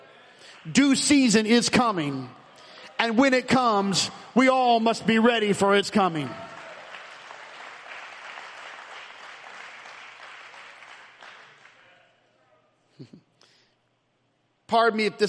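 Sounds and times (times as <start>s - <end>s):
speech: 0.6s - 2.4s, 3.0s - 6.5s, 14.7s - 15.2s
crowd clapping and applauding: 6.1s - 12.0s.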